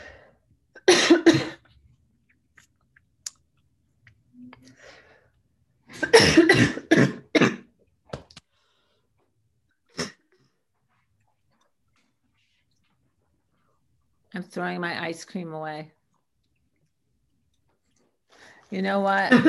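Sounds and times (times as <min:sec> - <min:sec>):
harsh coughs: 0:00.8 - 0:01.6, 0:05.9 - 0:07.7
speech: 0:14.4 - 0:16.0, 0:18.7 - 0:19.4.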